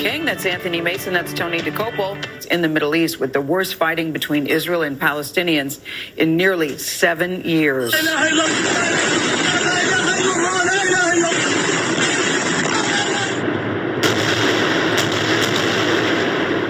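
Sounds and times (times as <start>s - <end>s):
speech: 0.0s - 9.6s
missiles exploding in Gaza amid heavy fighting: 8.2s - 10.6s, 11.2s - 16.6s.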